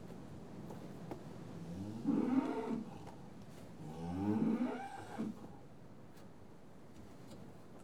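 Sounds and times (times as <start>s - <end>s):
TB-tested cattle mooing in a yard: 1.8s - 3.1s, 3.8s - 5.5s.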